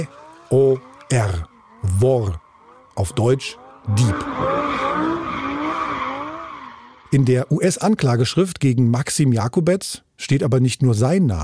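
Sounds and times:
speech: 0:00.0 - 0:02.4, 0:03.0 - 0:05.2, 0:07.1 - 0:11.4
car tires squealing while driving: 0:00.0 - 0:07.5
car engine roaring: 0:00.0 - 0:07.9.

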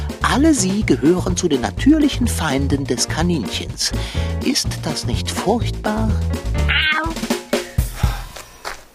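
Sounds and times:
speech: 0:00.3 - 0:07.4
tomcat meowing in a wavering yowl: 0:06.7 - 0:07.2.

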